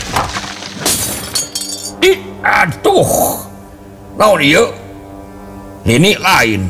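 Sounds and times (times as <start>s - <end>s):
glassware and crockery shattering during an earthquake: 0.0s - 2.0s
tinkling glass fragments: 0.5s - 2.0s
speech: 2.0s - 3.4s, 4.2s - 4.8s, 5.8s - 6.6s.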